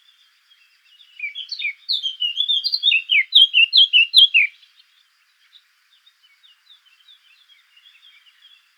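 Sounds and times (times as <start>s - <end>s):
Sylvia atricapilla Eurasian blackcap singing a brisk warble: 1.2s - 4.5s.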